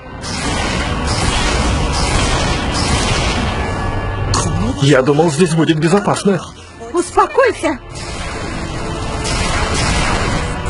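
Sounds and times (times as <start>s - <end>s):
heavy cannon fire: 0.2s - 4.2s, 7.9s - 10.6s
speech: 4.8s - 8.0s.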